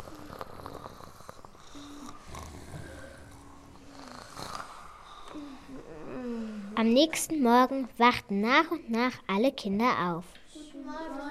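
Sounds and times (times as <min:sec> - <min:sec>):
kitten purring softly: 0:00.0 - 0:04.7
speech: 0:06.8 - 0:10.4.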